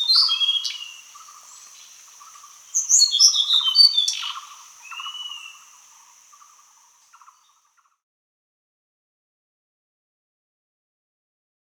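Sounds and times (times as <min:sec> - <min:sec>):
hill blue flycatcher warbling: 0:00.0 - 0:06.8
continuous high insect whine: 0:00.0 - 0:07.6.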